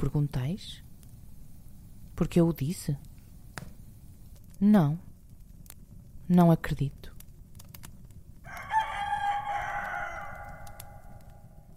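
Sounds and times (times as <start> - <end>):
speech: 0.0 - 0.9, 2.2 - 3.1, 4.6 - 5.1, 6.3 - 7.1
rooster crowing: 8.4 - 11.7.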